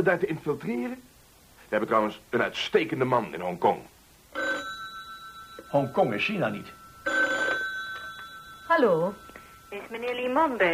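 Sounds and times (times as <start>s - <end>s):
speech: 0.0s - 3.9s, 5.7s - 6.8s, 8.7s - 10.7s
telephone ringing with trilling bell: 4.3s - 10.7s.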